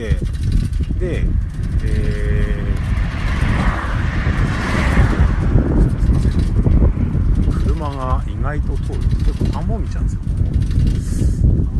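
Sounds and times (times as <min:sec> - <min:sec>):
speech: 0:00.0 - 0:02.2, 0:08.4 - 0:11.2
wind buffeting the microphone: 0:00.0 - 0:11.7
car rushing past: 0:02.6 - 0:07.8.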